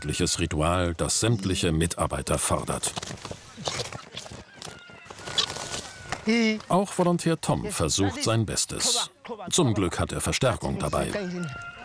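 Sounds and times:
speech: 0.0 - 3.9, 6.3 - 11.8
guinea fowl and turkeys cackling and squawking: 3.4 - 6.3, 10.6 - 11.8.

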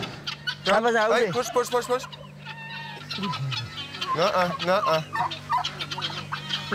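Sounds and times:
guineafowl calling while being herded toward an enclosure: 0.0 - 6.7
steady low hum: 0.0 - 6.7
speech: 0.7 - 2.2, 3.2 - 6.1.

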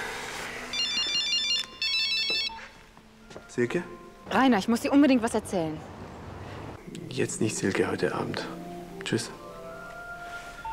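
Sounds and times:
mobile phone ringtone with electronic melody: 0.7 - 2.8, 10.3 - 10.7
speech: 3.6 - 6.0, 7.1 - 9.4.

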